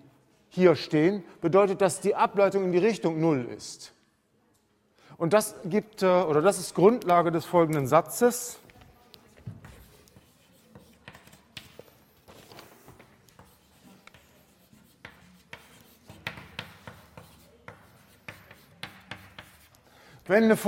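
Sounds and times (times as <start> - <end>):
speech: 0.5 - 4.0, 5.2 - 8.6, 20.3 - 20.6
writing scratching on a board during a maths lecture: 9.0 - 19.8.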